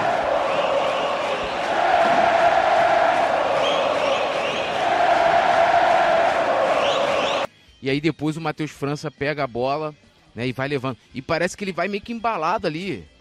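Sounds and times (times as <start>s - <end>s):
huge stadium crowd chanting in unison: 0.0s - 7.5s
speech: 7.8s - 13.1s.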